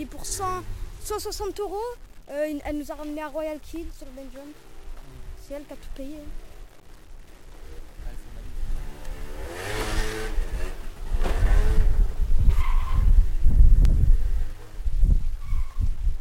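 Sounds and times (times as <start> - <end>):
speech: 0.0 - 6.4
scooter engine revving: 8.3 - 14.9.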